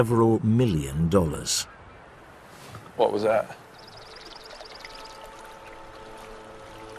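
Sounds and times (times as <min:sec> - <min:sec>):
speech: 0:00.0 - 0:01.8, 0:03.0 - 0:03.6
beaver swimming and splashing in pond water: 0:03.7 - 0:06.9.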